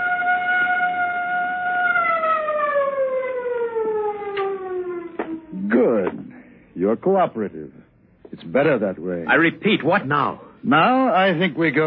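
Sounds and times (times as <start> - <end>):
siren wailing and winding down: 0.0 - 6.1
speech: 6.8 - 11.8.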